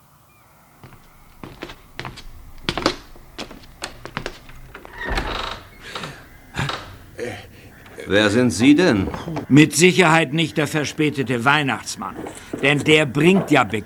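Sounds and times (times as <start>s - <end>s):
heavy forceful knocking on a door: 0.9s - 7.2s
speech: 8.1s - 13.8s.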